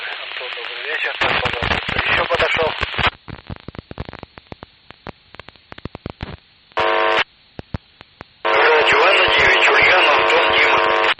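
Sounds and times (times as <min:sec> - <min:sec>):
amateur radio static with clicks and pops: 0:00.0 - 0:11.1
speech: 0:00.4 - 0:03.1.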